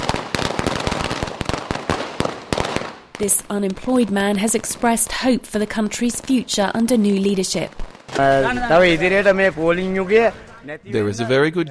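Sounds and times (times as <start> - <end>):
firecrackers crackling and popping outdoors at a street celebration: 0.0 - 10.7
continuous noisy street background: 3.2 - 11.6
speech: 3.2 - 11.6.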